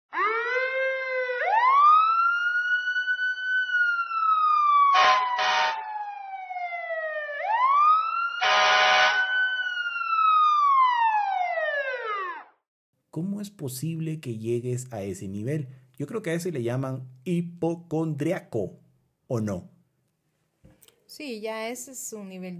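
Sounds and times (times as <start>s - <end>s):
ambulance siren wailing: 0.1s - 12.6s
short harsh horn blasts: 4.9s - 5.8s, 8.4s - 9.3s
speech: 13.2s - 19.7s, 21.1s - 22.5s.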